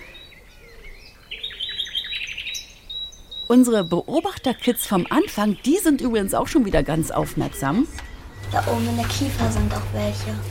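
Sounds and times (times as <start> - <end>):
birds chirping and singing outdoors: 0.0 - 10.5
speech: 3.5 - 10.5.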